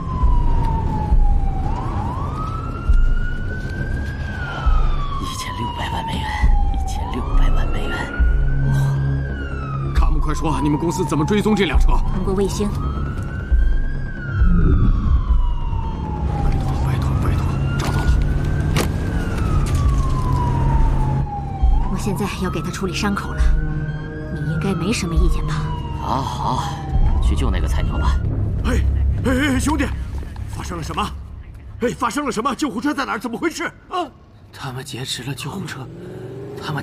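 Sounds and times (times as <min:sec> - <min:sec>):
ambulance siren wailing: 0:00.0 - 0:33.9.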